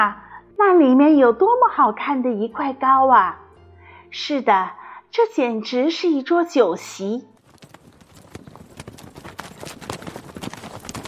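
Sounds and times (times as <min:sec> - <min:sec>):
speech: 0:00.0 - 0:03.4, 0:04.1 - 0:07.3
horse hooves clip-clopping on a road: 0:07.4 - 0:11.0.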